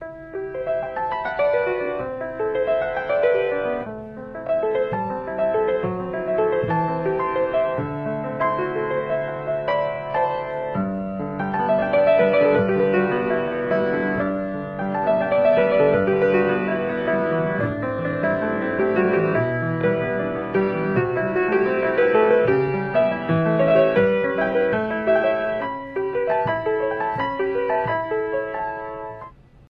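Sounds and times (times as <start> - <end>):
piano ringtone: 0.0 - 29.4.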